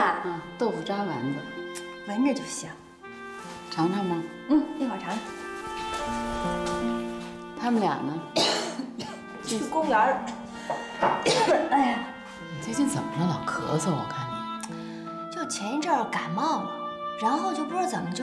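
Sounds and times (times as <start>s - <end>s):
speech: 0.2s - 5.4s, 6.0s - 6.5s, 7.6s - 8.6s, 9.5s - 14.2s, 15.5s - 18.2s
person clearing throat: 8.4s - 9.2s
person coughing in short harsh bursts: 8.4s - 9.2s, 11.2s - 11.7s.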